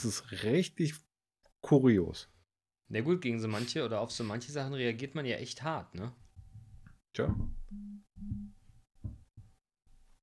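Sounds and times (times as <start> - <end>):
speech: 0.0 - 2.3, 2.9 - 6.2, 7.1 - 8.5
faint low thumps: 6.4 - 9.3
phone vibrating: 7.7 - 8.6.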